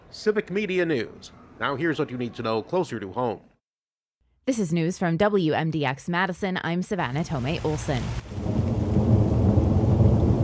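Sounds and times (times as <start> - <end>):
speech: 0.1 - 3.5, 4.5 - 8.4
thunderstorm rain falling: 7.2 - 10.4
thunderstorm rumble of thunder: 8.2 - 10.4.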